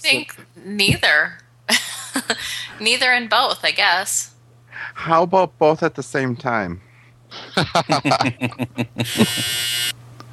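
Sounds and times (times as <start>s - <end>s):
speech: 0.0s - 6.9s, 7.5s - 9.7s
laughter: 7.3s - 9.6s
choppy vocal sounds: 7.9s - 9.2s
clothes dryer buzzer: 9.0s - 10.0s.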